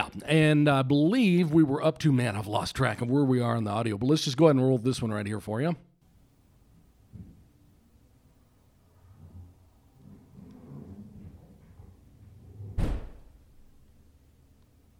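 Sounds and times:
speech: 0.2 - 5.9
furniture scooting across a floor: 9.1 - 12.8
bang against a wall: 12.7 - 13.4
thud: 12.7 - 13.4.

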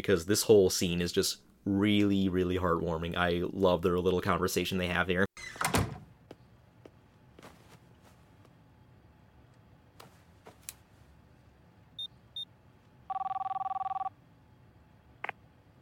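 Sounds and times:
speech: 0.0 - 5.6
phone ringing for an incoming call: 13.1 - 14.1.

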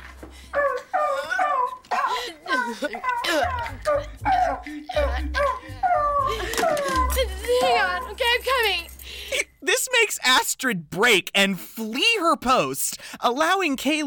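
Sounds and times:
dog yelping and whimpering in pain with tail pinned under a parked car: 0.5 - 7.3
speech: 2.7 - 14.0.

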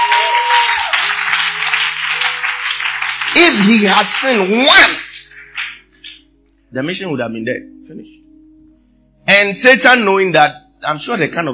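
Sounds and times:
large crowd applauding: 0.0 - 6.2
speech: 3.4 - 5.0, 6.7 - 8.2, 9.3 - 11.5.

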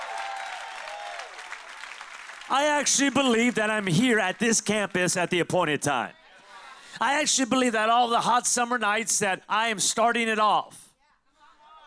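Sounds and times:
congregation applauding: 0.0 - 5.2
speech: 2.5 - 6.2, 7.0 - 10.8.

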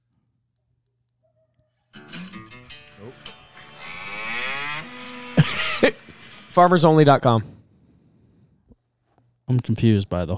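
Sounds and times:
cows mooing: 2.0 - 6.8
laughter: 5.2 - 7.3
speech: 5.8 - 7.5, 9.5 - 10.3.

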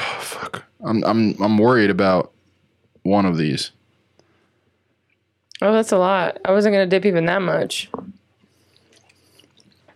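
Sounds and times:
speech: 0.5 - 2.4, 3.0 - 3.8, 5.6 - 8.0
chewing with wet squishy mouth noises: 8.6 - 9.9.

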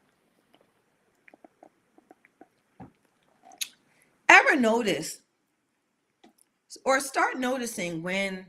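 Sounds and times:
person sipping a drink: 0.4 - 3.8
speech: 4.5 - 5.2, 6.8 - 8.4.

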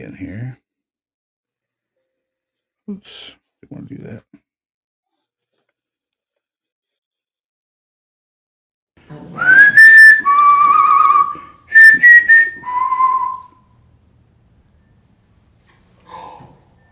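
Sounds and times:
speech: 0.0 - 0.6, 2.9 - 4.4, 9.1 - 10.3
tonal whistling from a recording: 9.4 - 13.8, 14.8 - 15.0.

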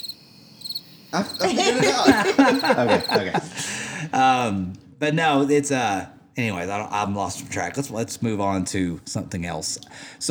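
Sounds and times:
cricket chirping sound effect: 0.0 - 3.8
speech: 1.1 - 10.2
people chuckling: 1.2 - 4.7.

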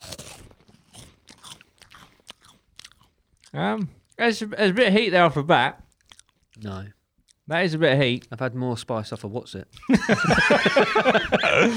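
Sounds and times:
biting and crunching a Carolina Reaper hot chip: 0.0 - 4.2, 5.8 - 7.4
speech: 3.5 - 5.8, 6.6 - 11.7
laughter: 9.8 - 11.7.

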